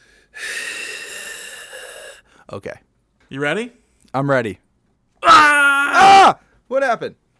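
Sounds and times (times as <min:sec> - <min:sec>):
person imitating heavy raspy guttural breathing: 0:00.0 - 0:02.5
speech: 0:02.5 - 0:04.6, 0:05.2 - 0:07.2.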